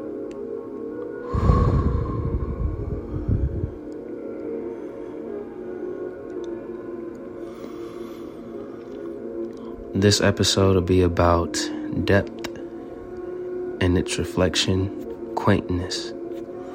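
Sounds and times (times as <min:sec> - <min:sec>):
slow deep breathing: 0:01.2 - 0:05.8, 0:07.4 - 0:09.9
speech: 0:10.0 - 0:12.4, 0:13.8 - 0:16.2.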